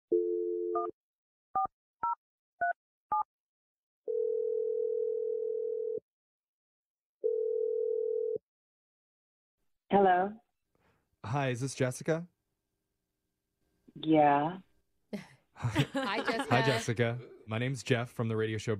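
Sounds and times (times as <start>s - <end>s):
steady telephone dial tone: 0.1s - 1.0s, 4.1s - 6.0s, 7.2s - 8.4s
speech: 9.9s - 10.4s, 11.2s - 12.3s, 14.0s - 18.7s
laughter: 15.2s - 17.2s.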